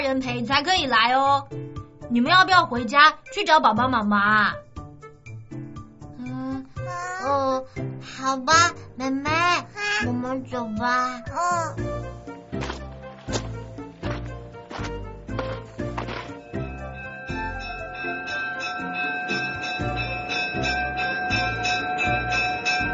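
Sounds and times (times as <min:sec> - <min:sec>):
speech: 0:00.0 - 0:04.7, 0:06.9 - 0:12.7
railroad crossing warning bell clanging: 0:15.4 - 0:22.9.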